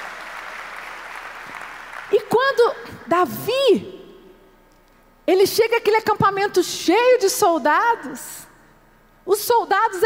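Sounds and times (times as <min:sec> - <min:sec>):
crowd applauding: 0:00.0 - 0:02.2
speech: 0:02.5 - 0:04.0, 0:05.3 - 0:08.4, 0:09.3 - 0:10.0.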